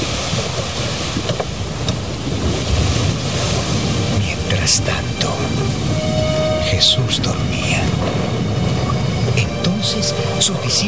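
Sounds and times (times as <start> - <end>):
stormy waves washing against a boat: 0.0 - 10.8
water splashes: 0.0 - 10.8
wind: 0.0 - 10.8
speech: 4.7 - 5.6, 6.8 - 8.3, 9.8 - 10.8.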